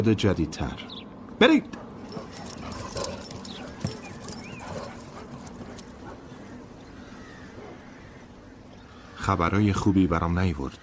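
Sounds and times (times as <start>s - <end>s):
speech: 0.0s - 1.8s, 9.3s - 10.8s
dogs whimpering and whining: 1.9s - 6.6s.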